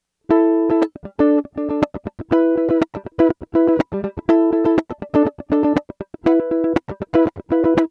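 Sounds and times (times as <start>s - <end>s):
mandolin chords: 0.3s - 7.8s.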